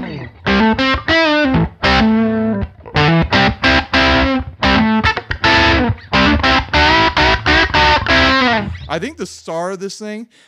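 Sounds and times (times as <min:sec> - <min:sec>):
overdriven electric guitar through Tube Screamer-style fuzz pedal playing chords and riffs: 0:00.0 - 0:09.0
speech: 0:09.0 - 0:10.4.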